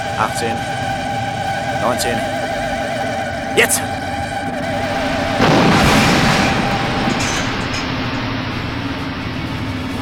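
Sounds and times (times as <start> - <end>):
low rumbling: 0.0 - 10.0
speech: 0.2 - 0.8, 1.8 - 2.4, 3.6 - 4.0
large explosion: 5.2 - 10.0.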